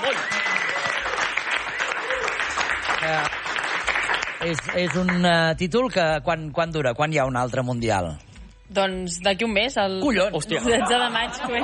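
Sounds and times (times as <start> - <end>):
laughter: 0.0 - 0.6, 10.5 - 11.6
people cheering: 0.0 - 4.2
studio audience clapping: 0.0 - 5.6
speech: 3.0 - 3.4, 4.4 - 11.6.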